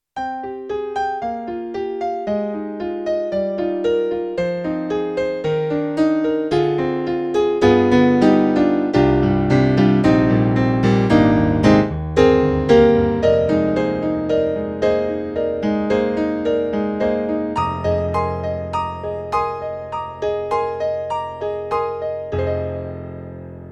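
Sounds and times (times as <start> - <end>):
Yamaha Motif-Rack ES mono grand piano: 0.2 - 23.7.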